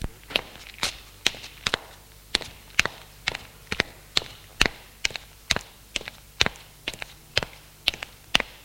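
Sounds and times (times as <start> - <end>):
footsteps on the floor above: 0.0 - 8.6.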